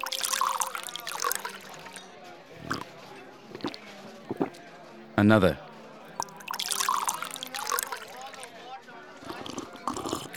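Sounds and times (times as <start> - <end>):
whiskey pouring into a glass: 0.0 - 2.9, 3.5 - 4.6, 6.2 - 8.6, 9.2 - 10.3
murmur of voices: 0.0 - 10.3
speech: 5.2 - 5.6.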